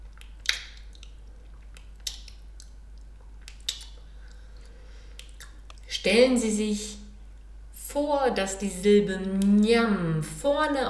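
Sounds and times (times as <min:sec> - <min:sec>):
wet lip smacks from someone chewing with relish: 0:00.0 - 0:05.9
speech: 0:06.0 - 0:07.0, 0:08.0 - 0:10.8.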